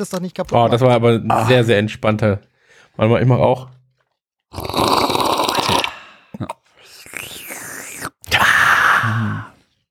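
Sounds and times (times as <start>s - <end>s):
speech: 0.0s - 3.8s, 4.5s - 4.9s, 6.4s - 6.6s
noisy slurping gulps of water: 4.5s - 9.5s
loud breathy gasp: 5.7s - 7.3s, 8.3s - 9.7s.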